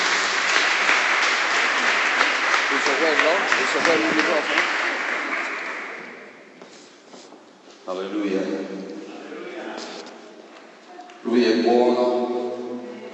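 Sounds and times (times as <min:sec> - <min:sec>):
audience applause: 0:00.0 - 0:06.5
speech: 0:03.0 - 0:04.8, 0:07.9 - 0:08.9, 0:11.2 - 0:12.3.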